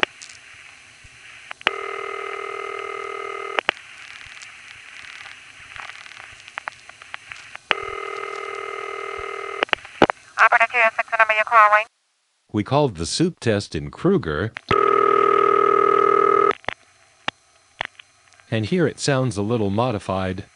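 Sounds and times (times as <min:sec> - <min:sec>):
faint telephone line hiss: 0:00.0 - 0:14.7, 0:16.4 - 0:20.5
standard city telephone ringback tone on a line in Richmond Hill, Queens: 0:01.7 - 0:03.6, 0:07.7 - 0:09.6, 0:14.7 - 0:16.5
speech: 0:10.4 - 0:11.9, 0:12.5 - 0:14.7, 0:18.5 - 0:20.5.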